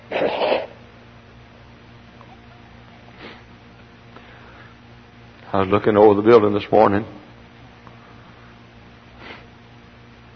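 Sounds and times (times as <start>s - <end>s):
person sniffling: 0.0s - 0.8s, 3.1s - 3.5s, 9.2s - 9.5s
steady low hum: 0.0s - 10.3s
speech: 5.5s - 7.2s.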